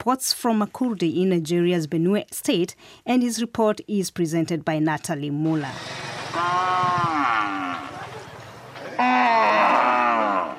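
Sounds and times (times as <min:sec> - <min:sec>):
speech: 0:00.0 - 0:07.3
cows mooing at a cattle market: 0:06.0 - 0:08.2, 0:08.8 - 0:10.5
low murmur of noise: 0:07.8 - 0:09.0.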